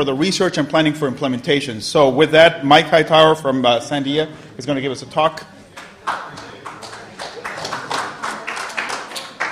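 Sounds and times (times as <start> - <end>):
speech: 0.0 - 5.5
audience clapping: 5.7 - 9.5.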